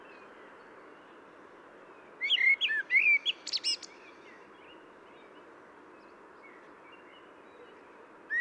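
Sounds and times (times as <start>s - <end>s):
steady low hiss: 0.0s - 8.3s
common blackbird singing: 2.2s - 5.4s, 6.0s - 8.3s.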